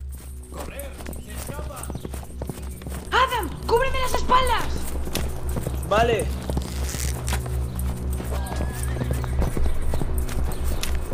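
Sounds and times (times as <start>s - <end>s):
busy outdoor noise: 0.0s - 11.1s
several horses' hooves clip-clopping: 0.0s - 11.1s
speech: 5.9s - 6.4s
horse whinny-like cry: 8.4s - 9.5s.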